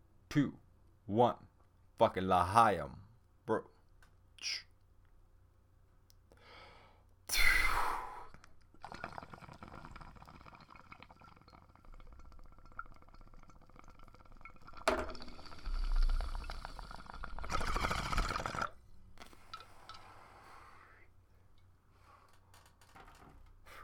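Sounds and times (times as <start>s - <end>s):
speech: 0.4s - 3.7s, 4.4s - 4.7s
person inhaling and exhaling while smoking a bong: 6.3s - 8.4s, 15.2s - 21.2s, 23.6s - 23.8s
bong bubbling: 7.3s - 20.1s.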